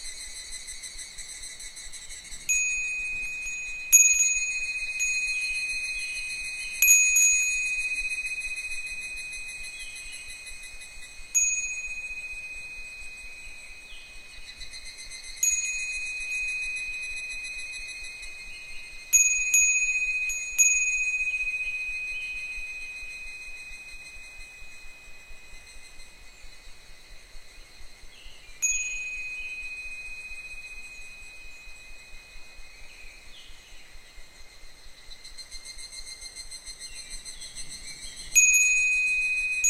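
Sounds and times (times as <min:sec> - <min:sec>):
wind chimes ringing with bright high metal tones: 0:02.3 - 0:26.2, 0:28.6 - 0:33.6, 0:38.2 - 0:39.6.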